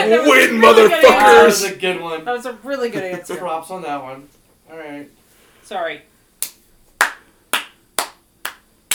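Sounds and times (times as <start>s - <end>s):
speech: 0.1s - 6.1s
slow sharp crisp handclaps: 6.4s - 8.9s.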